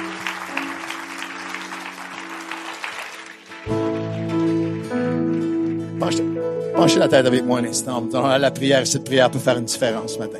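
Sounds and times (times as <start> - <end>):
church congregation applauding: 0.0 - 4.9
sustained tonal music: 0.0 - 10.3
speech: 6.0 - 10.3.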